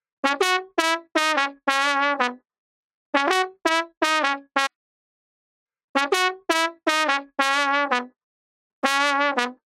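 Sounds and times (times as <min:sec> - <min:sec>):
brass trumpet: 0:00.2 - 0:02.4, 0:03.2 - 0:04.7, 0:06.0 - 0:08.1, 0:08.8 - 0:09.6.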